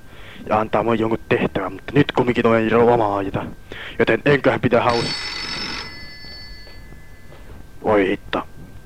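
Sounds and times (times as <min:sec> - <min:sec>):
speech: 0:00.4 - 0:05.3, 0:07.8 - 0:08.5
telephone ringing with bright electronic tone: 0:04.2 - 0:07.9.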